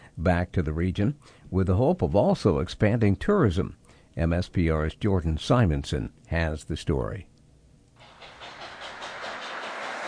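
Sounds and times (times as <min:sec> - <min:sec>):
speech: 0:00.2 - 0:07.3
train engine running on rails: 0:08.0 - 0:10.0.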